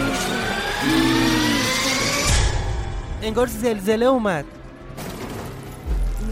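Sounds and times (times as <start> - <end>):
car engine revving before crash: 0.0 - 2.9
speech: 3.3 - 4.6
crash: 5.0 - 6.2.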